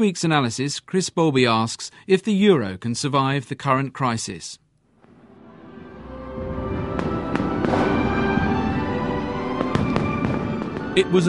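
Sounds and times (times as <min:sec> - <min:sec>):
speech: 0:00.0 - 0:04.6, 0:11.0 - 0:11.2
fireworks bursting at the launch of the European single currency: 0:04.9 - 0:11.2.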